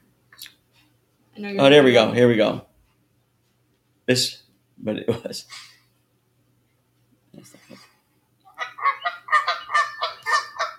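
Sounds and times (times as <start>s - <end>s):
speech: 1.4s - 2.7s, 4.1s - 5.7s
goose honking: 8.6s - 10.7s.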